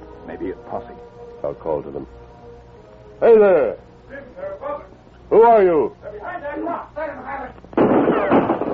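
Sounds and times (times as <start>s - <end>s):
speech: 0.4s - 2.3s, 3.2s - 4.7s, 5.3s - 8.7s
volley of rifle gunfire: 7.8s - 8.7s.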